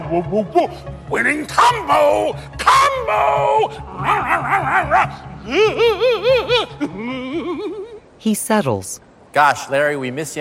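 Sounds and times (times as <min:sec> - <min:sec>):
speech: 0:00.1 - 0:10.3
female dog whiny yelp: 0:04.0 - 0:05.2.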